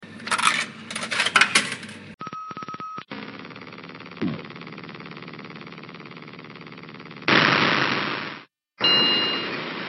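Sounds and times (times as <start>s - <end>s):
mechanical hum: 0.0s - 2.2s, 3.1s - 7.5s
arcade token clattering through a coin slot: 0.1s - 2.1s
short electronic beep: 8.8s - 9.6s.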